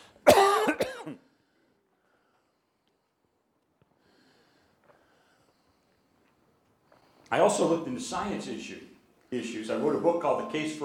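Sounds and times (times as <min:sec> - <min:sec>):
person clearing throat from a tickle: 0:00.2 - 0:01.2
person coughing from a tickle in the throat: 0:00.2 - 0:01.3
speech: 0:07.3 - 0:10.8.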